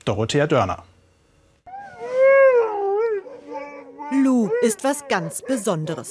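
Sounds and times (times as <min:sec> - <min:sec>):
speech: 0:00.0 - 0:00.9, 0:04.2 - 0:06.0
sled dogs howling before a run at a sled dog meet: 0:01.7 - 0:06.0.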